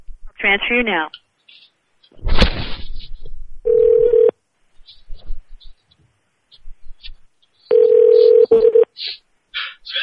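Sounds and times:
speech: 0:00.4 - 0:01.2
telephone dial tone: 0:03.7 - 0:04.3, 0:07.7 - 0:08.8.

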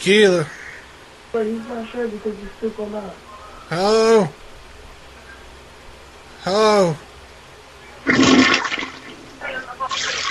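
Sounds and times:
speech: 0:00.0 - 0:00.6, 0:01.3 - 0:04.4, 0:06.4 - 0:07.1
softer surge of running water: 0:08.0 - 0:10.2
toilet flushing on its own: 0:08.1 - 0:09.1.

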